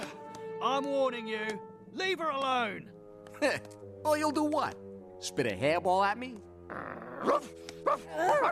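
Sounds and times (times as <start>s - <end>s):
speech: 0.8s - 8.4s
dog barking and whining at someone: 7.2s - 8.4s.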